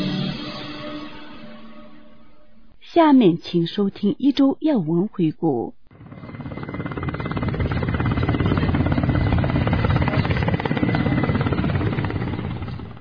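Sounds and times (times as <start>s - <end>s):
speech: 3.0s - 5.8s
helicopter flying from Leh to the Zanskar region: 5.8s - 12.9s.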